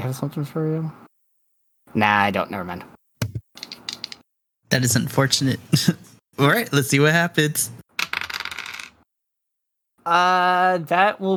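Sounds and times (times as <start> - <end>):
speech: 0.1 - 1.0, 1.9 - 3.0, 4.7 - 7.8, 10.1 - 11.3
dice clattering against a hard surface: 3.6 - 4.2, 8.0 - 9.0.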